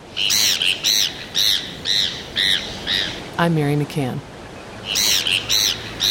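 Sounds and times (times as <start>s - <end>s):
Heermann's gull squawking: 0.2s - 3.2s, 4.8s - 6.0s
speech: 3.4s - 4.3s.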